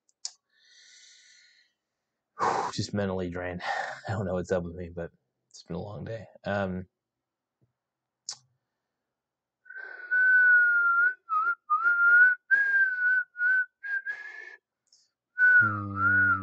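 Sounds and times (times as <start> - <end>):
speech: 2.8 - 7.0
person whistling a wavering tune: 9.7 - 14.5, 15.4 - 16.4.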